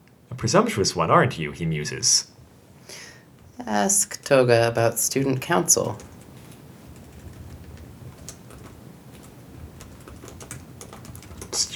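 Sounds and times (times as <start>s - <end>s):
steady hiss: 0.0s - 11.7s
speech: 0.4s - 2.3s, 2.9s - 6.1s
typing on a computer keyboard during play of a text adventure game: 5.7s - 11.7s.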